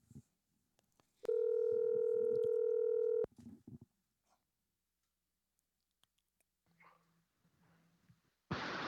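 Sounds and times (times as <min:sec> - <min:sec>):
faint low ringback pulses of a phone call connecting: 0:01.3 - 0:03.3
loud steady telephone tone: 0:01.3 - 0:03.3
burst of noise: 0:08.5 - 0:08.8.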